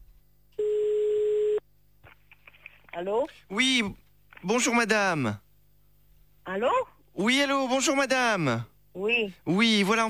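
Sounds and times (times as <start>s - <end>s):
telephone line tone while placing a call: 0.6s - 1.6s
speech: 3.0s - 5.4s, 6.5s - 10.0s.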